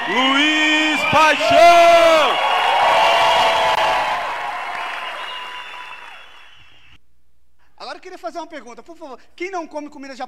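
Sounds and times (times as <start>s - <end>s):
live audience applauding: 0.0s - 6.8s
audience cheers and whistles: 0.0s - 7.0s
speech: 0.1s - 2.5s, 8.2s - 10.2s.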